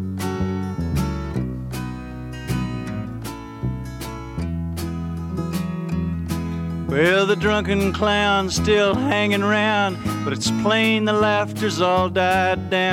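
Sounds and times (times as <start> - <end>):
singer-songwriter folk song with band and strummed notes: 0.2 - 12.9
speech: 7.0 - 12.9.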